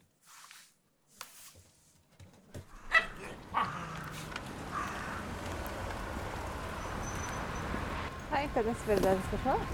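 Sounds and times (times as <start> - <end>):
steady outdoor hum: 2.1 - 9.7
Maltese dogs barking: 2.8 - 5.0
speech: 8.4 - 9.7.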